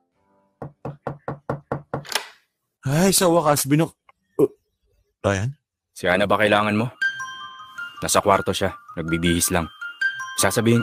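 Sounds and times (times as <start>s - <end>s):
firm knocking on a door: 0.6s - 2.1s
speech: 2.8s - 4.6s, 5.2s - 7.0s, 8.0s - 9.8s, 10.4s - 10.8s.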